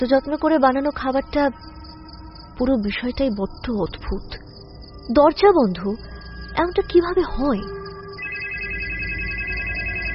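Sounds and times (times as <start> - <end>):
speech: 0.0 - 1.8, 2.6 - 4.4, 5.1 - 7.8
mobile phone ringtone with bright electronic tones: 7.1 - 10.1.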